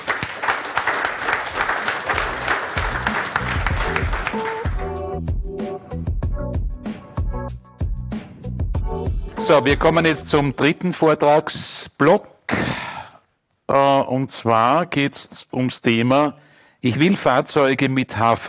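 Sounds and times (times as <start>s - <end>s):
audience applauding a speaker: 0.0s - 4.8s
rhythmic music jingle: 2.2s - 10.8s
speech: 9.5s - 12.3s, 13.7s - 18.4s.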